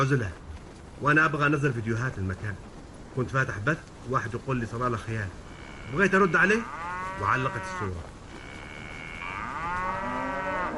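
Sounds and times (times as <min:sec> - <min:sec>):
speech: 0:00.0 - 0:00.4, 0:01.0 - 0:08.1
constant noise: 0:00.0 - 0:10.7
grazing cow mooing in Salalah: 0:05.5 - 0:10.7.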